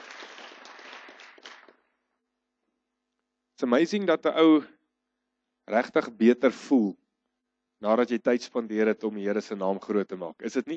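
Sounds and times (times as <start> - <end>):
room full of people applauding: 0.0 - 1.8
speech: 3.6 - 4.8, 5.7 - 7.0, 7.8 - 10.7.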